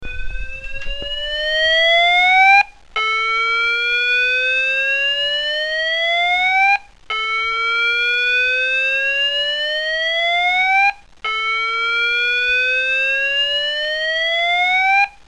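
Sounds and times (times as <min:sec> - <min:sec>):
building evacuation: 0:00.0 - 0:15.2.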